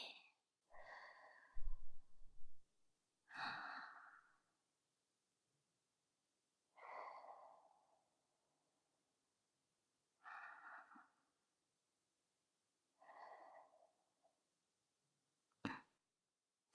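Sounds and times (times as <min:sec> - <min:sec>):
slow guided breathing in and out before a shoulder massage: 0:00.7 - 0:02.6, 0:03.3 - 0:04.6, 0:06.7 - 0:08.6, 0:10.2 - 0:11.4, 0:12.9 - 0:14.4.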